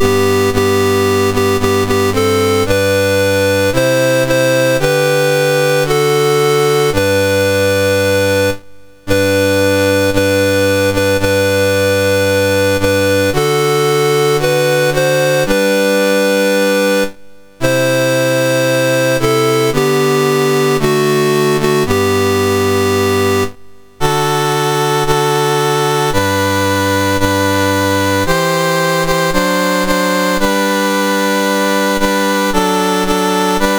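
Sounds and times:
chiptune national anthem on a MOS6581R2 sound chip: 0:00.0 - 0:33.7.

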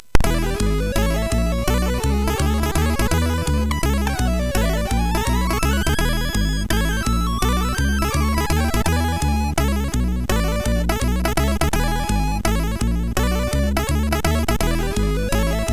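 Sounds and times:
modern jazz on MOS6581R4: 0:00.2 - 0:15.7.

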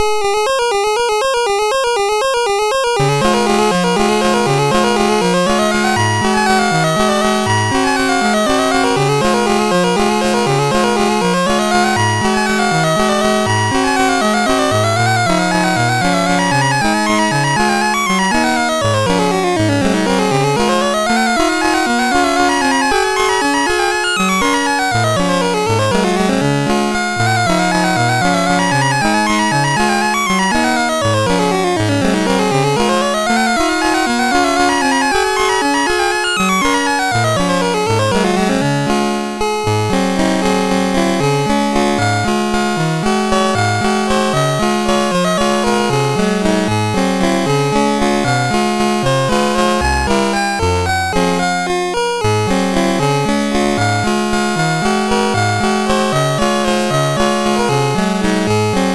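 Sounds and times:
waltz played on MOS6581R2 SID chip: 0:00.0 - 0:58.9.

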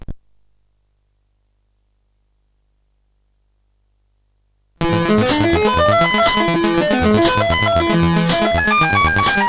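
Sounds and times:
detuned lead sound on CSG8580R5 in BASIC: 0:04.8 - 0:09.4.

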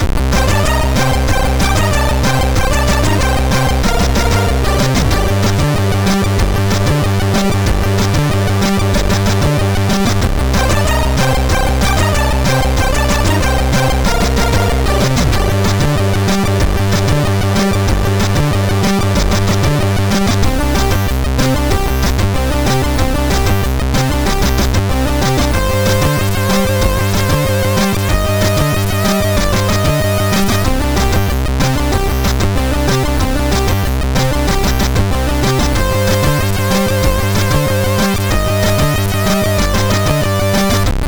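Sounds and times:
chiptune music on a MOS6581R3 sound chip: 0:00.2 - 0:40.9.

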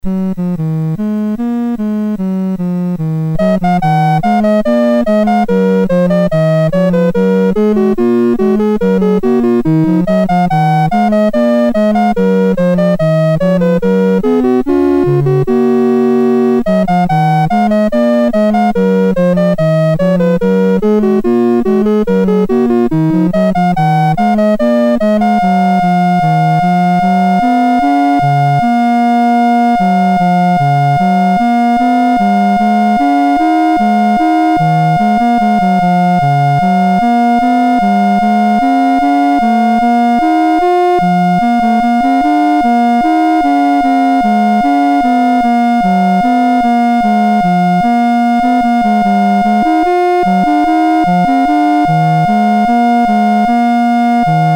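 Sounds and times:
bourree played on a MOS6581 sound chip: 0:00.0 - 0:54.5.

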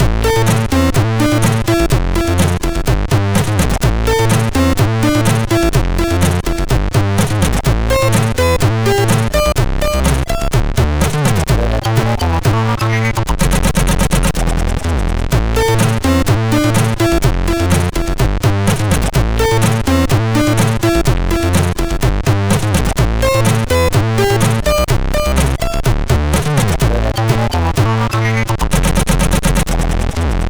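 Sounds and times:
MOS6581R2 chip synthesizer bass: 0:00.0 - 0:30.4.

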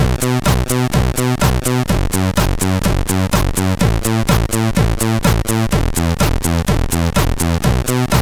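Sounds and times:
synthesizer bass from a CSG8580R5 SID chip: 0:00.0 - 0:08.2.

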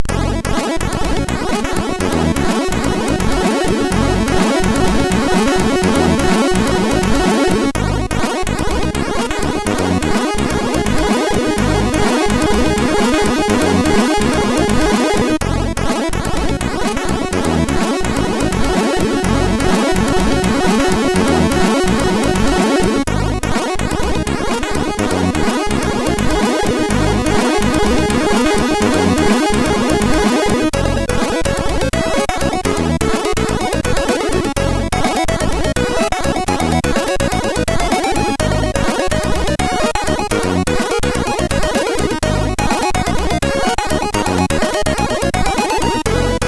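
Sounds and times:
music from MOS6581R4 sound chip: 0:00.0 - 0:46.4.

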